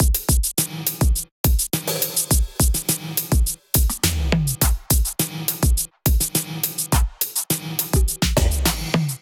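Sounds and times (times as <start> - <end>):
drum kit groove: 0.0 - 9.2.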